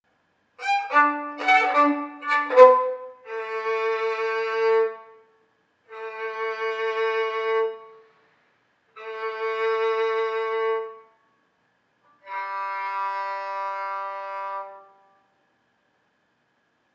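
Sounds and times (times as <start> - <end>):
violin playing with anguish and despair: 0.6 - 5.1, 5.9 - 8.0, 9.0 - 11.1, 12.2 - 15.1.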